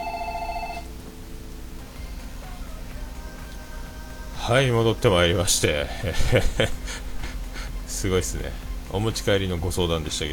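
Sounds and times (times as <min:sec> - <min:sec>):
telephone ringing with bright electronic trill: 0:00.0 - 0:01.0
low steady hum: 0:00.0 - 0:10.3
speech: 0:04.5 - 0:07.1, 0:08.0 - 0:10.3
laughter: 0:04.8 - 0:08.3.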